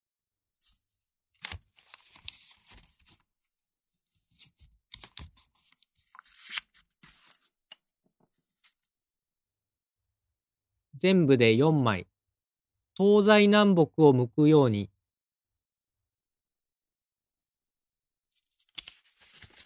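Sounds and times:
papery rustles: 0.6 - 3.2, 4.2 - 7.6, 18.5 - 19.6
curing tape crackling and ripping while stuck and folded on paper: 1.4 - 3.2, 6.0 - 7.4
speech: 11.0 - 12.1, 13.0 - 14.9.

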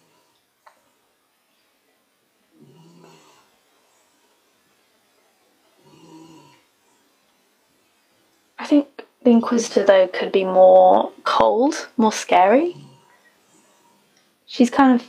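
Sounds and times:
female dog snoring softly: 2.5 - 4.6, 5.5 - 7.2, 12.3 - 14.1
speech: 8.7 - 12.8, 14.6 - 15.0.

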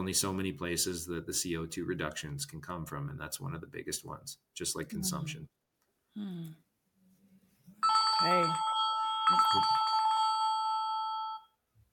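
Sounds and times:
speech: 0.0 - 6.6, 8.2 - 8.7, 9.3 - 9.8
phone ringing with electronic tone: 7.8 - 11.6.

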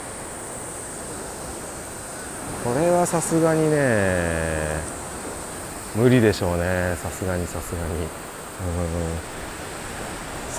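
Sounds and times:
ocean surf churning and washing against rocks: 0.0 - 10.5
speech: 2.6 - 4.9, 6.0 - 9.4
low hum of a voice: 7.8 - 9.3.

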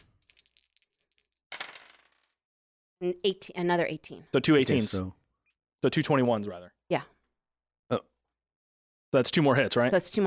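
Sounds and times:
dice tumbling and skittering across a hard table: 0.0 - 2.4
set of plastic dice shaken: 0.2 - 2.3
speech: 3.0 - 5.2, 5.8 - 7.2, 7.9 - 8.1, 9.1 - 10.2.

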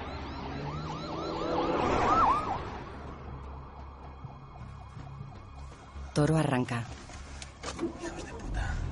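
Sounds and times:
police patrol car siren wailing as the car drives past: 0.0 - 5.8
speech: 6.2 - 7.0, 7.8 - 8.8.

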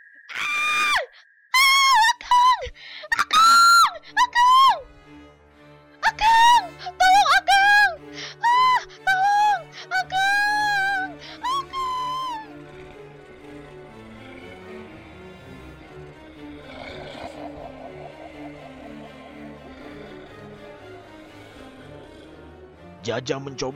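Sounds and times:
woman screaming for help: 0.3 - 4.8, 6.1 - 12.5
speech: 23.1 - 23.7.

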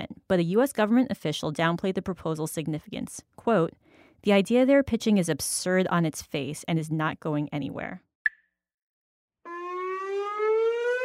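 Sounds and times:
speech: 0.3 - 8.1
Cold War-era civil defense siren in Hawaii warning of nuclear attack: 9.5 - 11.0.

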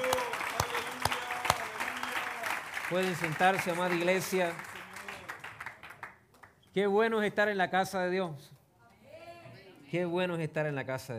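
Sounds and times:
audience applauding: 0.0 - 6.6
speech: 2.9 - 4.7, 6.8 - 8.6, 9.9 - 11.1.

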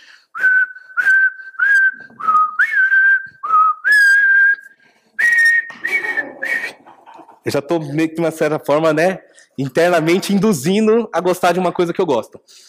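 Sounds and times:
man whistling a movie villain's theme tune: 0.3 - 6.8
speech: 7.4 - 12.6.

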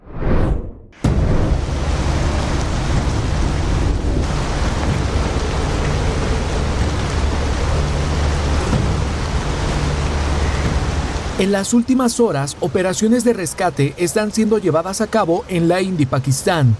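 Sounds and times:
low rumble beneath tropical storm rain and wind: 0.0 - 11.4
gusting wind from a cyclone making landfall as a tropical storm in western India: 0.0 - 14.2
heavy rain from a cyclone making landfall as a tropical storm in western India: 1.0 - 16.7
speech: 11.4 - 16.7.

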